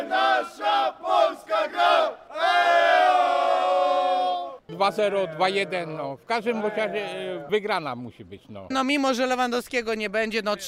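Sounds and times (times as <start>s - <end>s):
crowd of football fans chanting in unison: 0.0s - 7.5s
speech: 4.8s - 10.6s.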